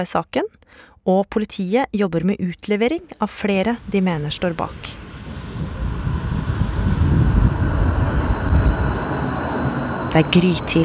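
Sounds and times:
speech: 0:00.0 - 0:05.0, 0:10.1 - 0:10.8
light rail tram heading toward the airport in Bergen rumbling: 0:02.7 - 0:10.8
thin constant high whine of a light rail tram: 0:03.3 - 0:10.8.

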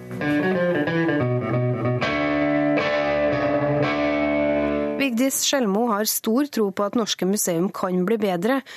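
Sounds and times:
heavily distorted electric guitar riff of ringing chords through an amplifier: 0:00.0 - 0:05.1
speech: 0:05.3 - 0:08.7.

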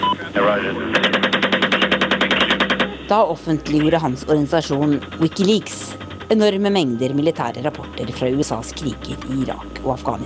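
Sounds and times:
crackly radio-style voice: 0:00.0 - 0:03.1
speech: 0:00.3 - 0:01.1, 0:03.1 - 0:10.2.

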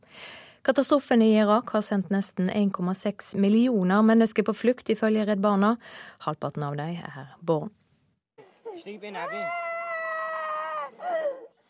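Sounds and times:
speech: 0:00.7 - 0:07.8, 0:08.8 - 0:09.7
young girl screaming in pain: 0:09.2 - 0:11.6.

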